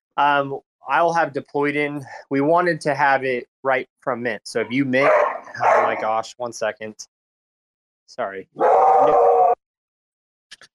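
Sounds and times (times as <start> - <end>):
speech: 0.2 - 5.2, 5.8 - 7.1, 8.1 - 9.4
dog barking: 5.0 - 6.0, 8.6 - 9.6
dog yipping: 5.0 - 6.0.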